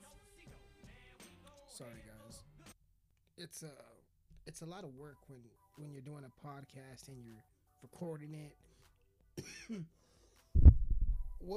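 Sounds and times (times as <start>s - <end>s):
speech: 1.8s - 2.5s, 3.4s - 8.6s, 9.4s - 10.0s
brief cough with a short voiced catch: 9.4s - 10.0s
boomy thump of something knocking against the microphone: 10.6s - 11.4s
rumbling microphone handling noise: 10.6s - 11.5s.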